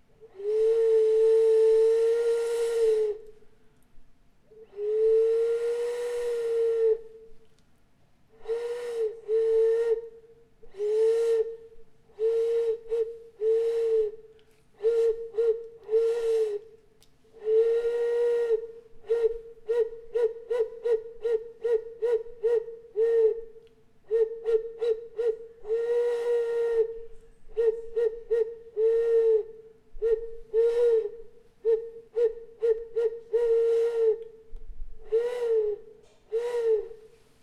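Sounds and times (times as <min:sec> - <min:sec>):
effigy whistle blowing: 0:00.3 - 0:03.4, 0:04.6 - 0:07.3, 0:08.4 - 0:14.2, 0:14.8 - 0:16.7, 0:17.4 - 0:23.5, 0:24.1 - 0:37.1.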